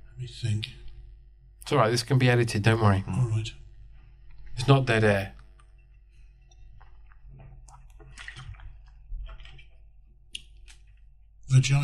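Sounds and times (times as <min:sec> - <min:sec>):
speech: 0:00.2 - 0:00.8, 0:01.7 - 0:03.6, 0:04.6 - 0:05.4, 0:11.5 - 0:11.8
person sipping a drink of water: 0:06.2 - 0:11.0.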